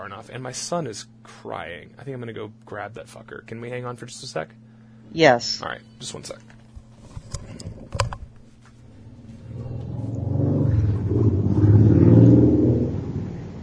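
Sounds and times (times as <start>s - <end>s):
speech: 0.0s - 6.6s
faint clicks and knocks: 6.3s - 8.8s
motorcycle engine rumbling past outside: 8.8s - 13.6s.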